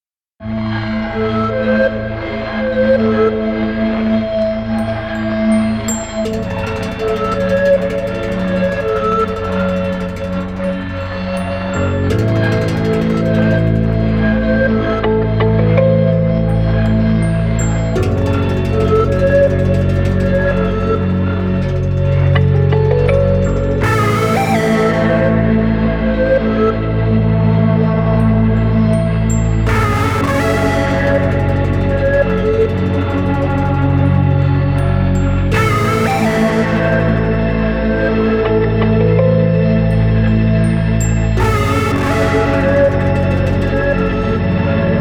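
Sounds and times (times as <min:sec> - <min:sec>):
mysterious tension music: 0:00.5 - 0:44.9.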